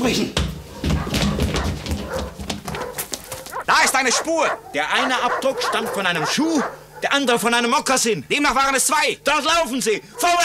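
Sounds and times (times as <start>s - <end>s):
speech: 0.0s - 0.5s, 3.7s - 10.4s
several dogs barking and yelping in agitated pursuit: 0.6s - 7.6s, 10.0s - 10.4s.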